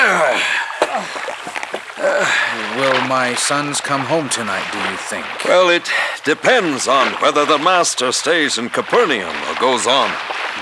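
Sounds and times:
small rowboat pushing off into the water: 0.0 - 10.5
speech: 3.1 - 10.5.

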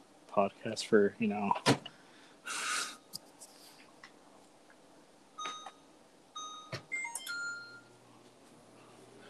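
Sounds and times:
speech: 0.4 - 1.8
microwave oven beeping: 5.4 - 8.0.

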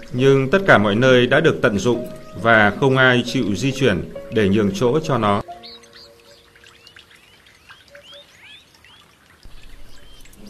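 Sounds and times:
soft patter of rain: 0.0 - 2.9, 5.4 - 10.4
black-bellied plovers and young birds calling in the rain: 0.0 - 10.4
speech: 0.1 - 5.5.

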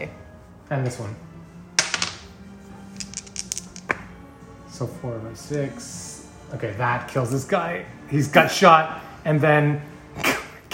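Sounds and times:
speech: 0.0 - 1.3, 4.8 - 10.7
two six-sided dice clattering across a hard surface: 1.8 - 4.1.

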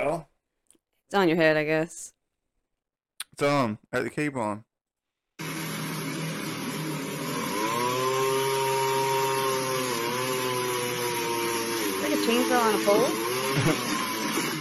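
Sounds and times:
speech: 0.0 - 0.3, 1.1 - 2.2, 3.4 - 4.7, 12.2 - 14.0
pole chainsaw cutting wood: 5.4 - 14.5.

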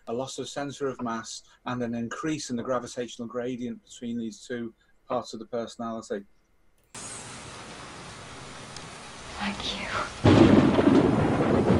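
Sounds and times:
speech: 0.1 - 7.2
faint hiss of storm noise: 7.0 - 11.7
thunder rumbling during a thunderstorm: 7.0 - 11.7.

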